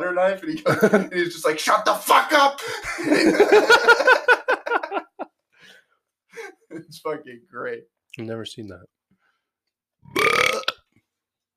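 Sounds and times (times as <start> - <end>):
speech: 0.0 - 4.2, 7.0 - 9.0
laughter: 0.6 - 1.2, 2.6 - 5.3
loud deep throaty burp: 10.0 - 10.9.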